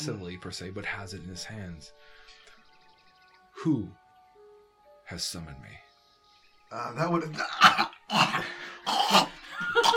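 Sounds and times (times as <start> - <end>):
speech: 0.0 - 2.2, 3.6 - 4.0, 5.1 - 5.8, 6.7 - 9.9
harsh raspy hacking coughs: 7.5 - 9.9.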